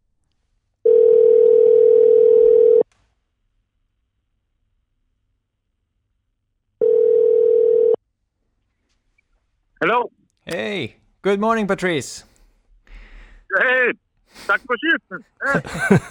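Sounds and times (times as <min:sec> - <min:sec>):
telephone ringback tone as a call is placed from Norway: 0:00.8 - 0:02.8, 0:06.8 - 0:08.0
speech: 0:09.8 - 0:12.3, 0:13.5 - 0:16.0
laughter: 0:15.4 - 0:16.0.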